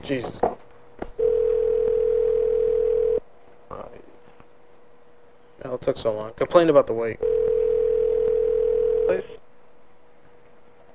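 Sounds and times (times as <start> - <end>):
speech: 0.0 - 0.5, 5.8 - 7.4, 9.1 - 9.3
telephone ringback tone: 1.2 - 3.2, 7.2 - 9.4.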